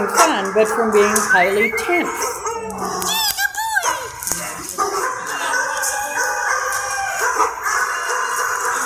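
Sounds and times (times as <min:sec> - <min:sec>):
speech: 0:00.0 - 0:03.1
many dogs barking and yelping in a tense kennel: 0:00.0 - 0:08.8.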